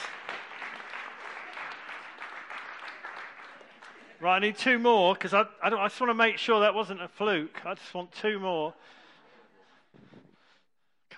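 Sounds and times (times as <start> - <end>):
audience applause: 0.0 - 4.5
speech: 4.2 - 9.0.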